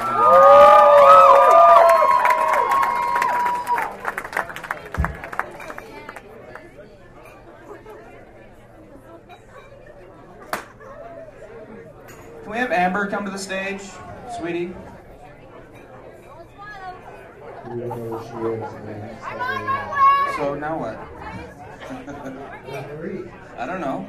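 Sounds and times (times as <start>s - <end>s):
audience cheering and whooping: 0.0s - 4.2s
audience clapping: 0.0s - 6.8s
low murmur of chatter: 0.0s - 24.0s
speech: 13.3s - 14.9s
laughter: 17.5s - 19.5s, 21.7s - 22.8s.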